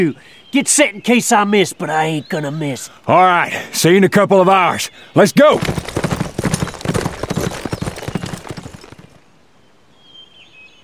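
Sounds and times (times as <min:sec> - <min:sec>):
speech: 0:00.0 - 0:06.0
horse hooves clip-clopping through a box canyon: 0:05.4 - 0:09.2.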